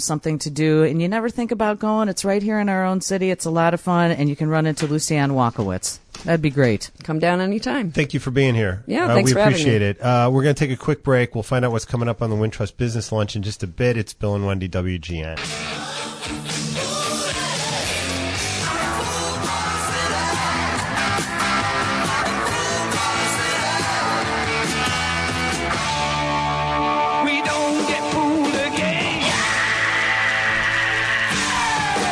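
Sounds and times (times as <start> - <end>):
speech: 0.0 - 16.5
driving guitars: 15.4 - 32.0
drums: 15.4 - 32.0
loud dense rock track: 15.4 - 32.0
raw blood-curdling screamed vocal: 28.8 - 32.0.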